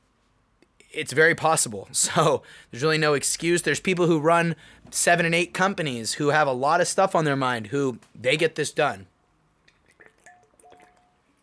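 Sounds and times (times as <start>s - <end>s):
speech: 1.0s - 9.1s
person drinking water: 9.6s - 11.4s.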